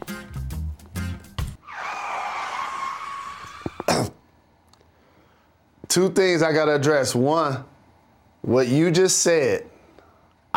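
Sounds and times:
brakes screeching: 1.6 - 4.0
speech: 6.0 - 7.7, 8.4 - 9.7.

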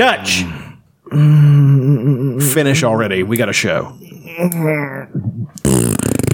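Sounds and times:
speech: 0.0 - 6.0
short low sputtering fart: 5.6 - 6.3.

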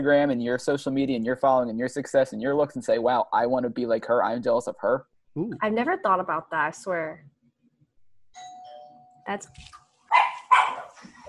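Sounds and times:
speech: 0.0 - 7.3, 9.3 - 9.8
doorbell ringing: 8.4 - 9.2
dog barking at a doorbell: 10.1 - 11.0.

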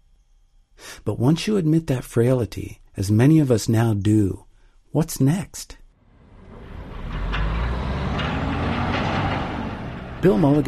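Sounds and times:
speech: 1.0 - 5.8, 10.2 - 10.6
heavy truck engine rumbling outdoors at a timber company in Kamiah Idaho: 6.0 - 10.6
logs being loaded onto logging trucks with knocks and clanks: 6.3 - 10.6.

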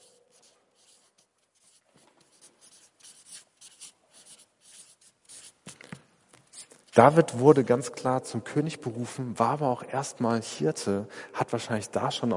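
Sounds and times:
pen writing a keyword on paper: 0.0 - 5.8
speech: 7.0 - 12.3.

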